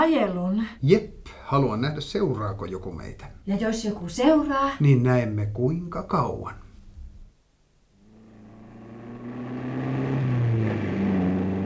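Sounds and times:
speech: 0.0 - 6.6
car engine running while driving and accelerating: 8.1 - 11.6.

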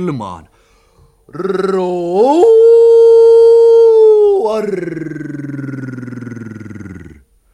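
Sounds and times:
speech: 0.0 - 0.5, 1.3 - 2.9, 4.4 - 5.6
voice imitating a young lion's roar: 1.3 - 7.3.

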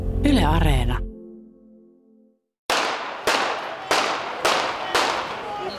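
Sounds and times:
speech: 0.2 - 1.1
gunshots echoing in a town square in Handlová Slovakia: 2.7 - 5.5.

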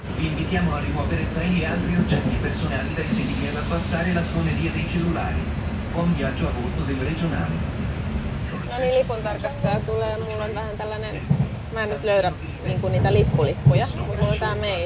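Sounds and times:
low rumble of a moving passenger train's interior: 0.0 - 14.8
speech: 0.2 - 7.8, 8.8 - 14.8
airy hiss: 3.0 - 5.5.

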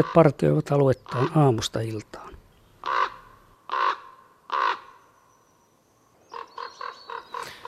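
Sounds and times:
common raven calling with loud hoarse croaks: 0.0 - 1.7, 2.8 - 5.0, 6.3 - 7.6
speech: 0.0 - 3.0.

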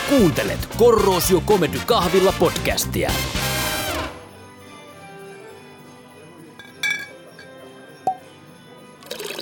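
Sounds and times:
speech: 0.1 - 3.4
light glass clinks: 6.4 - 8.6
liquor pouring into glasses: 8.9 - 9.4.

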